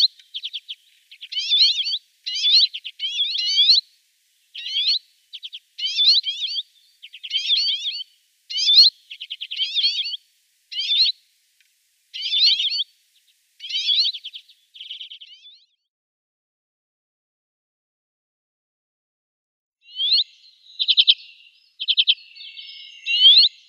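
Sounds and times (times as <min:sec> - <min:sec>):
common redpoll calling: 0:00.0 - 0:03.9, 0:04.5 - 0:11.2, 0:12.1 - 0:15.7, 0:19.9 - 0:23.6.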